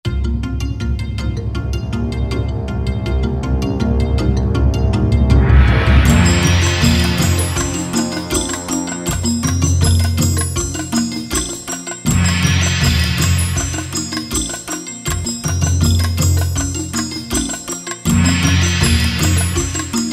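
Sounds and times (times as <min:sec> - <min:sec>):
shakuhachi played percussively: 0:00.1 - 0:20.1.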